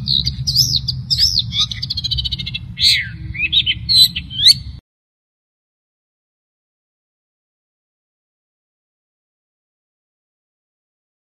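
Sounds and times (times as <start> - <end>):
Long-tailed shrike loud varied warbling song: 0.0 - 4.8
low rumbling hum: 0.0 - 4.8.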